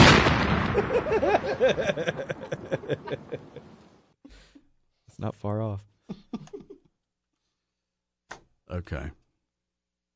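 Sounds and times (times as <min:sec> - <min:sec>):
explosion sound effect with a rumbling tail: 0:00.0 - 0:03.5
laughter: 0:00.6 - 0:03.8, 0:06.1 - 0:06.9
speech: 0:00.8 - 0:03.6, 0:05.2 - 0:06.7, 0:08.7 - 0:09.2.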